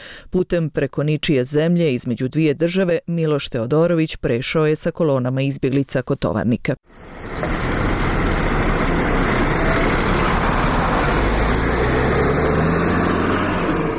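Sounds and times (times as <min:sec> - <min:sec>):
speech: 0:00.3 - 0:07.6
bus engine idling: 0:06.9 - 0:13.9.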